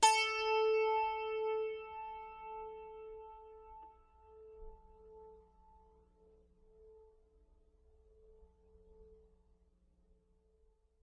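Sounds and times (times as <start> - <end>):
ZITH A4 zither: 0.0 - 5.8.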